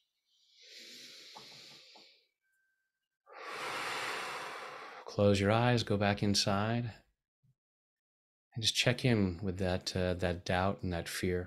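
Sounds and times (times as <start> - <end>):
deep breath: 0.3 - 2.3, 3.3 - 5.1
speech: 5.2 - 7.0, 8.6 - 11.4.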